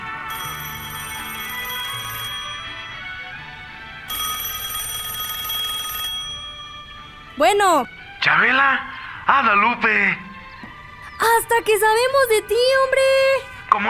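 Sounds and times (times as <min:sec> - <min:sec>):
telephone ringing in a village phone booth: 0:00.0 - 0:07.9
speech: 0:07.4 - 0:10.2, 0:11.2 - 0:13.8.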